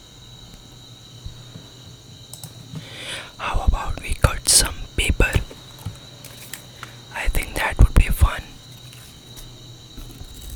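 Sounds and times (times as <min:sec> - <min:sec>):
person clicking with their mouth: 0:02.8 - 0:05.8, 0:06.8 - 0:08.7.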